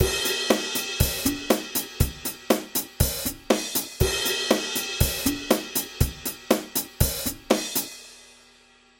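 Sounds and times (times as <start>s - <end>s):
snare drum: 0.0s - 7.9s
hi-hat: 0.0s - 8.5s
cymbal: 0.0s - 8.9s
kick drum: 1.0s - 7.6s.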